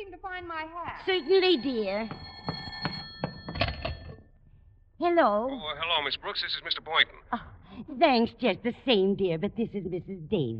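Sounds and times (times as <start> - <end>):
speech: 0.0 - 2.4, 5.0 - 10.5
old-fashioned telephone bell ringing: 1.0 - 4.2.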